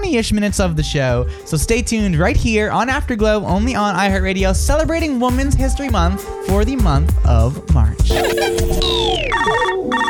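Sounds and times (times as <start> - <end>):
busy musical backdrop: 0.0 - 10.0
speech: 0.0 - 10.0
telephone ringing in bright electronic bursts: 8.1 - 10.0.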